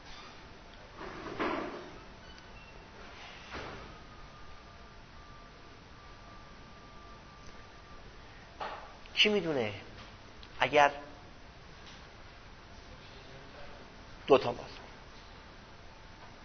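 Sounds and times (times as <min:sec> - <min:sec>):
low hiss and hum: 0:00.0 - 0:16.4
door being pushed closed with scraping: 0:01.0 - 0:02.0
speech: 0:09.2 - 0:09.9, 0:10.6 - 0:11.0, 0:14.3 - 0:14.8.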